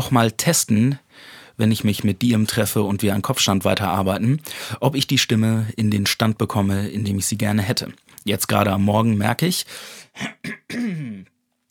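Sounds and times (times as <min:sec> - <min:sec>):
speech: 0:00.0 - 0:11.3
person clearing throat: 0:10.2 - 0:11.4.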